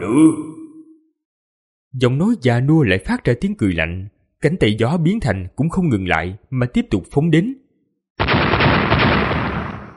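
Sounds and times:
speech: 0.0 - 0.5, 2.0 - 7.6
explosions merging into continuous rumble: 8.2 - 9.9.

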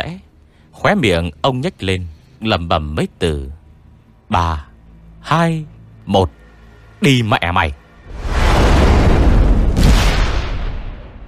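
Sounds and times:
speech: 0.1 - 3.6, 4.3 - 6.4, 7.0 - 7.8
explosion of a fireball at the corner of a staircase: 8.1 - 11.2.

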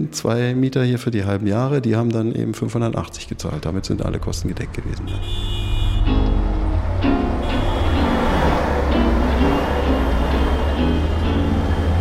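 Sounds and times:
speech: 0.0 - 5.6
train rumble at the S-Bahn and U-Bahn station Warschauer Straße in Berlin: 2.9 - 11.9.

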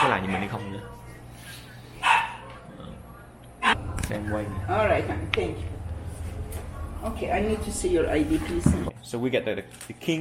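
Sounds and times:
dog giving a short bark at a guesthouse in Knob Noster: 0.0 - 0.6, 2.0 - 2.7
steady low hum: 0.8 - 9.0
speech: 4.1 - 5.8, 7.0 - 10.2.

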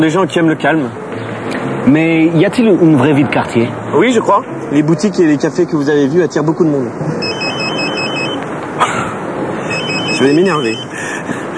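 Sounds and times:
speech: 0.0 - 1.1, 1.8 - 7.6, 10.2 - 11.4
telephone ringing with a warbling electronic trill: 7.2 - 8.4, 9.7 - 10.9.

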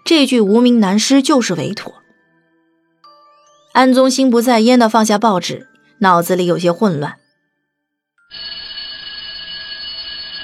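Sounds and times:
speech: 0.1 - 2.0, 3.8 - 7.2
electric school bell ringing for end of class: 8.3 - 10.4.

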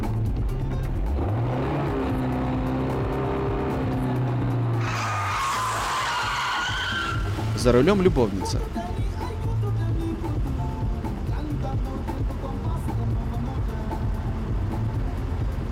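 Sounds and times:
car engine droning behind a pedestrian on a street: 0.1 - 15.6
harsh car tyre skid: 4.8 - 7.6
speech: 7.7 - 8.8.

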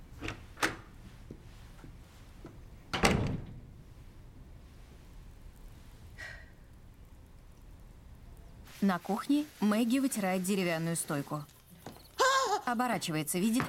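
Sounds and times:
door clicks and knocks as someone leaves a room: 2.9 - 3.6
speech: 8.8 - 11.5, 12.7 - 13.6.

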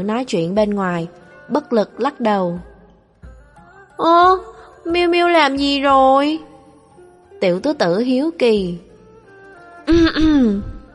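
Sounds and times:
speech: 0.0 - 2.7, 4.0 - 6.5, 7.4 - 8.9, 9.9 - 10.7
person coughing: 9.9 - 10.6.

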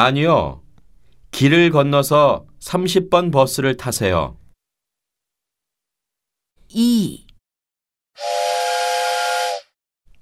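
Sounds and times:
speech: 0.0 - 0.6, 1.3 - 4.4, 6.7 - 7.2
train whistle blast as a train arrives at a station platform: 8.2 - 9.8.

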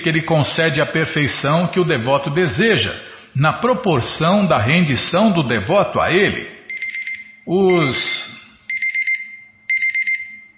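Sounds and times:
speech: 0.0 - 6.6, 7.4 - 8.4
timer alarm with rapid high-pitched electronic beeps: 6.7 - 10.5.

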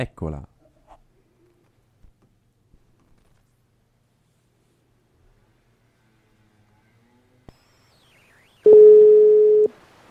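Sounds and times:
telephone ringing tone while a call is placed: 8.6 - 9.7.

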